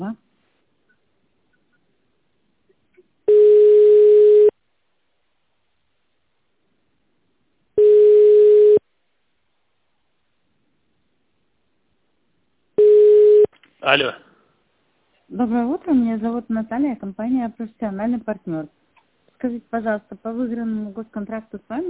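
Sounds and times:
telephone ringback tone while a call is being connected: 3.3s - 4.5s, 7.8s - 8.8s, 12.8s - 13.5s
speech: 13.9s - 14.2s, 15.3s - 18.8s, 19.4s - 21.8s.

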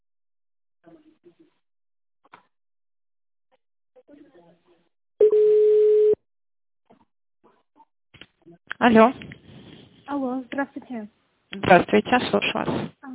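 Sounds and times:
telephone line tone during call transfer: 5.2s - 6.2s
speech: 8.5s - 9.4s, 10.1s - 13.1s.

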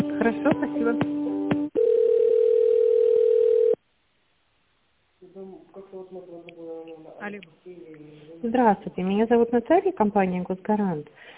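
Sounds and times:
speech: 0.2s - 1.3s, 8.4s - 11.3s
steady single-pitch telephone tone during office call transfer: 1.7s - 3.8s.

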